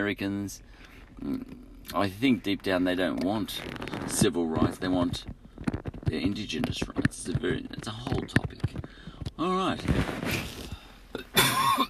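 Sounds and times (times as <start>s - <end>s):
speech: 0.0s - 10.6s
throaty coughing: 11.1s - 11.8s.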